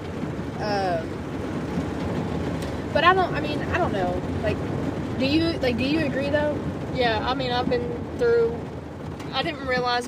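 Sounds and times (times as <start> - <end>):
loud heavy rain pouring: 0.0 - 10.0
speech: 3.0 - 8.7, 9.3 - 10.0.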